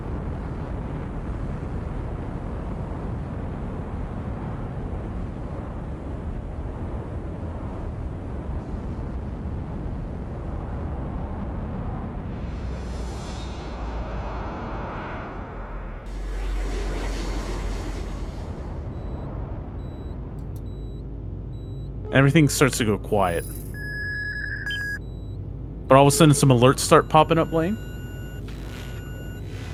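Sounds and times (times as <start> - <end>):
dense steady mechanical rumble of arrays: 0.0 - 29.7
heavy whooshing surges: 10.4 - 20.4
beeping: 18.8 - 29.7
speech: 22.2 - 23.6, 25.9 - 27.9.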